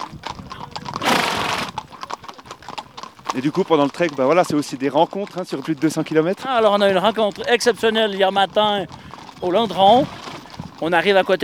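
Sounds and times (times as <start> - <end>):
11-year-old mare snorting: 0.0 - 4.2, 8.6 - 11.0
11-year-old mare hooves clopping on a trek: 0.0 - 11.4
speech: 3.3 - 10.2, 10.8 - 11.4.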